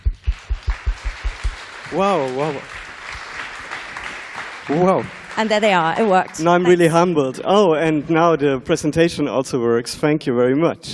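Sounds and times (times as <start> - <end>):
evenly spaced low thumps: 0.0 - 1.6
crowd applauding: 0.0 - 8.4
speech: 1.9 - 2.8, 4.7 - 10.9.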